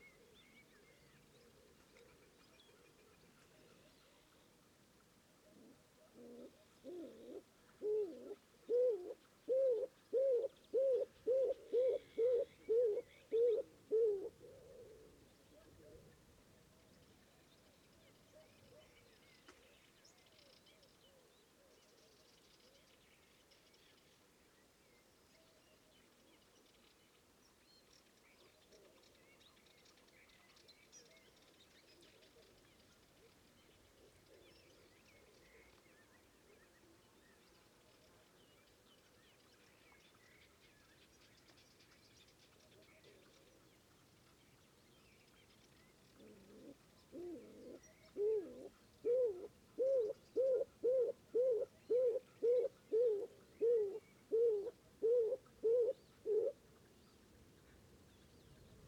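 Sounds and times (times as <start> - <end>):
stock dove Columba oenas calling: 5.6 - 15.1, 46.2 - 56.6.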